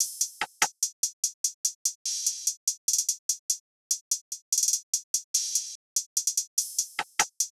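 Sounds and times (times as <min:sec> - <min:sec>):
drum loop top stem: 0:00.0 - 0:00.7, 0:07.0 - 0:07.3.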